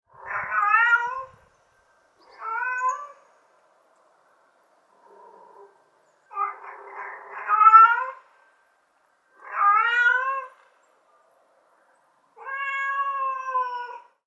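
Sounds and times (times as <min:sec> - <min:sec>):
mother cat calling for her kittens: 0:00.1 - 0:01.4, 0:02.2 - 0:03.3, 0:06.3 - 0:08.2, 0:09.4 - 0:10.6, 0:12.4 - 0:14.1.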